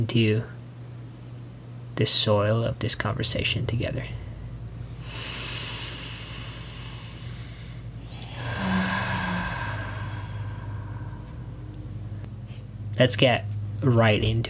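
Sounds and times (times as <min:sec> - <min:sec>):
speech: 0:00.0 - 0:00.6, 0:02.0 - 0:04.2, 0:13.0 - 0:14.4
deep breath taken together: 0:04.3 - 0:12.8.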